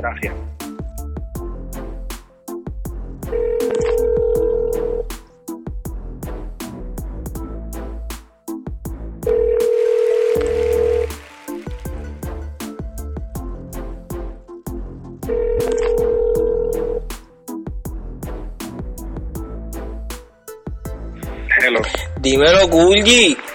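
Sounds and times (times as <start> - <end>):
speech: 0.0 - 0.6, 22.3 - 23.4
rhythmic beat: 0.2 - 23.5
telephone ringback tone as a phone call is placed: 3.4 - 5.0, 9.3 - 11.1, 15.3 - 17.0.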